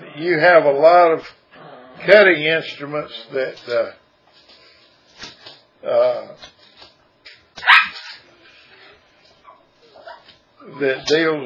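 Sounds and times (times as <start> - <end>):
speech: 0.2 - 1.4, 2.0 - 4.0, 5.2 - 6.5, 10.6 - 11.4
dog and cat scuffling over a dog bed: 3.2 - 11.4
dog barking while fighting a cat over a dog bed: 7.6 - 8.2.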